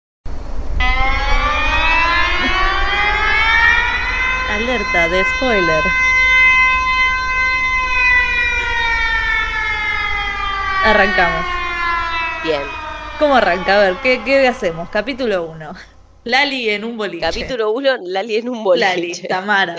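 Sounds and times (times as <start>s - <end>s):
alarm siren wailing: 0.7s - 16.3s
speech: 4.6s - 6.1s, 10.8s - 11.6s, 12.4s - 19.7s
laughter: 18.8s - 19.7s.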